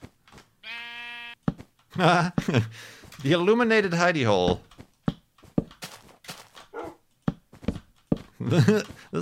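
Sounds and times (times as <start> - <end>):
sheep bleating: 0.6 - 1.4
speech: 2.0 - 4.7, 8.5 - 9.2.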